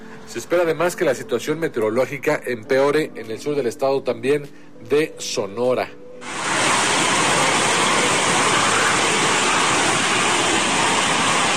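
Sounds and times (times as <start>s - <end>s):
speech: 0.3s - 6.3s
heavy rain: 6.2s - 11.5s.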